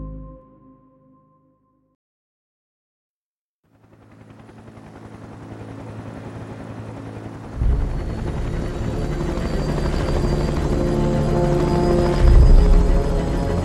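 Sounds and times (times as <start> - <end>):
rescue helicopter rotor thudding and engine whining while landing on a mountain rock plateau: 4.0 - 13.6
stormy wind in the mountains: 7.4 - 13.6.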